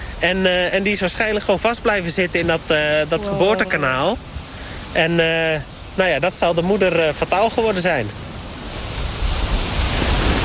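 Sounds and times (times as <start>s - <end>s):
waves washing onto a beach: 0.0s - 10.4s
speech: 0.2s - 4.3s, 4.9s - 8.2s.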